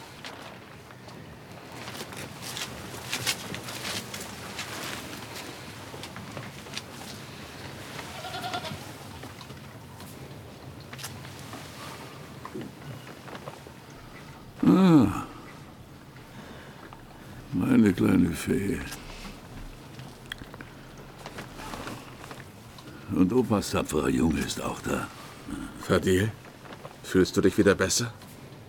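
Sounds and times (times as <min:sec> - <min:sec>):
rustling in a barn: 0:00.0 - 0:28.6
goats bleating inside a stable: 0:08.0 - 0:08.9
speech: 0:18.3 - 0:19.0, 0:23.2 - 0:26.4, 0:27.0 - 0:28.2.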